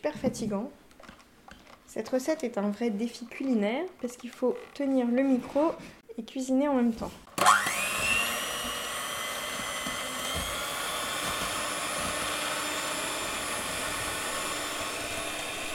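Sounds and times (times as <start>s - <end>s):
speech: 0.0s - 0.8s, 1.9s - 7.5s
electric mixer beating aquafaba: 7.4s - 15.7s.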